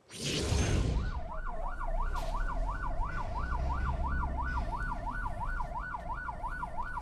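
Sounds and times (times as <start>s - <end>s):
burst of passing noise: 0.0s - 1.2s
traffic and engines of a presidential motorcade rumbling: 0.8s - 6.9s
ambulance siren wailing: 0.9s - 6.9s.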